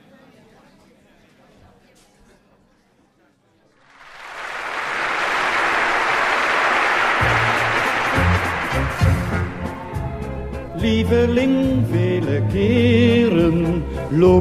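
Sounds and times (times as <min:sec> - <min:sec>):
large concert audience applauding in the Concertgebouw in Amsterdam: 0:03.8 - 0:10.4
speech: 0:11.1 - 0:14.3.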